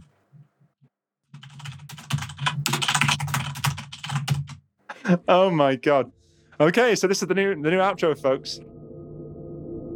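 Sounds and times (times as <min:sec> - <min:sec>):
rapid typing on a computer keyboard: 0:01.3 - 0:04.6
speech: 0:05.1 - 0:08.8.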